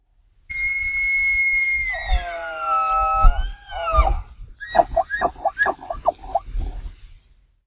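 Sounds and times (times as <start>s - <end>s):
elk bugling at Point Reyes: 1.0s - 6.8s.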